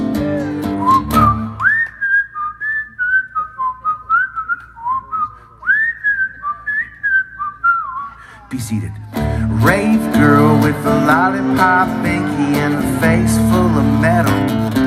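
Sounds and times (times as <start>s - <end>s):
bright clear whistled melody: 0.2s - 8.1s
speech: 8.7s - 9.1s, 9.9s - 14.7s.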